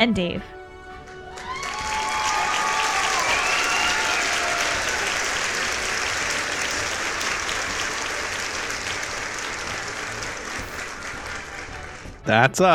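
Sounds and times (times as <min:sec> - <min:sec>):
speech: 0:00.0 - 0:00.6, 0:12.2 - 0:12.7
award-show audience applauding: 0:00.9 - 0:12.3
audience whistles: 0:01.4 - 0:12.0.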